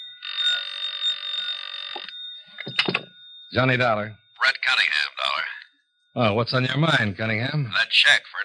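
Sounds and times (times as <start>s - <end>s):
old-fashioned telephone bell ringing: 0.0s - 5.4s
clunk of a telephone receiver being picked up: 2.0s - 3.1s
speech: 3.5s - 5.5s, 6.2s - 8.4s.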